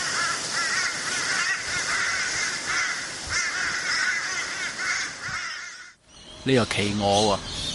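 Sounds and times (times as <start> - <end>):
crow cawing: 0.0 - 6.0
speech: 6.4 - 7.6.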